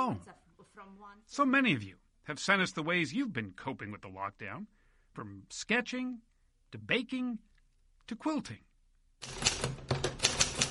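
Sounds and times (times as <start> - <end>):
speech: 0.1 - 7.5, 8.1 - 9.8
mechanical typewriter keystrokes clattering: 9.2 - 10.6.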